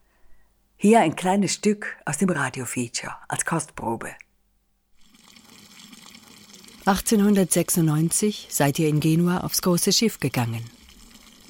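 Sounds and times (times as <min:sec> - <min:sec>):
speech: 0:00.8 - 0:04.2, 0:06.9 - 0:10.8
water running from a village fountain: 0:05.0 - 0:11.4.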